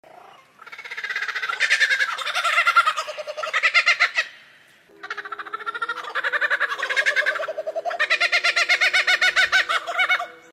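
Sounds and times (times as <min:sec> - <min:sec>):
Menura lyrebird: 0:00.1 - 0:10.5.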